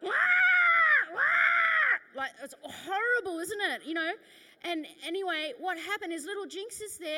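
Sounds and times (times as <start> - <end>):
person imitating a crow's caw: 0.0 - 2.1
speech: 2.4 - 7.1.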